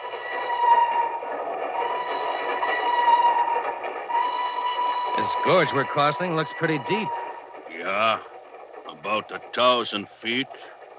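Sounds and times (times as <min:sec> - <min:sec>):
train rolling along the rails across a trestle: 0:00.0 - 0:10.9
speech: 0:05.3 - 0:07.2, 0:07.8 - 0:08.3, 0:08.9 - 0:10.7.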